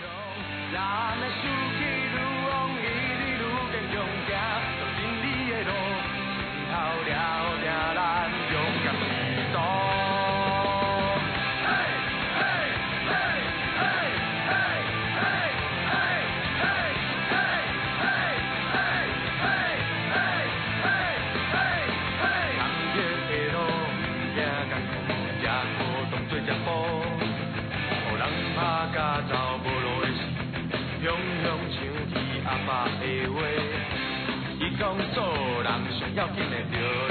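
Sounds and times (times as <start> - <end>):
full band accompaniment over a driving steady beat: 0.0 - 37.0
speech: 0.7 - 1.7
several voices singing together in Taiwanese: 11.0 - 23.6.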